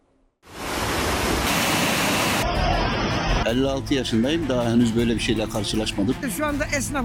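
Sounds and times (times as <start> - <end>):
floodwater rushing through an overflowing stream: 0.5 - 3.4
speech: 3.5 - 7.0.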